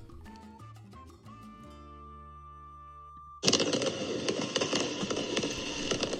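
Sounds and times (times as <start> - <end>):
fireworks exploding over a city at night: 3.4 - 6.1.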